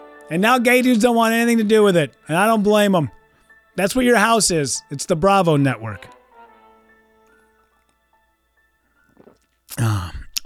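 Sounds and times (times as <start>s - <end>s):
speech: 0.3s - 3.2s, 3.8s - 6.2s, 9.7s - 10.4s
slurping sip of coffee: 9.1s - 9.5s.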